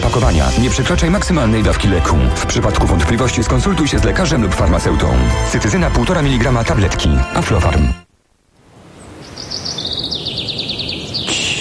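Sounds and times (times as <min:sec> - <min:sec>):
speech: 0:00.1 - 0:08.1
birds singing in rapid chirping trills: 0:09.0 - 0:11.5.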